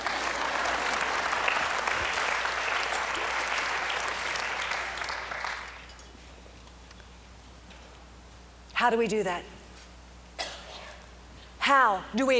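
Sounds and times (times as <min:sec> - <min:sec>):
audience clapping: 0:00.0 - 0:06.0
speech: 0:08.8 - 0:09.6, 0:11.7 - 0:12.3.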